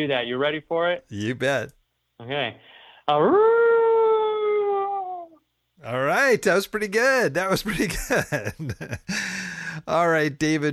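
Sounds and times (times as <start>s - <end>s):
speech: 0.0s - 3.6s, 5.8s - 10.7s
person imitating a hound dog's howl: 3.1s - 5.4s.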